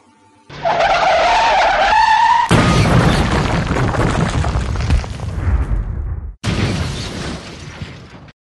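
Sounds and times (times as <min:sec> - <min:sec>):
loud drawn-out tire screech: 0:00.5 - 0:02.8
violent crash of crunching metal and shattering debris: 0:00.6 - 0:05.6, 0:06.4 - 0:08.3.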